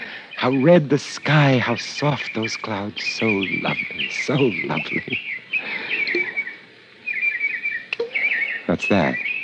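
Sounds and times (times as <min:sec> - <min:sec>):
small birds twittering and chirping in a fish pond: 0:00.0 - 0:09.4
speech: 0:00.4 - 0:06.3, 0:08.7 - 0:09.3.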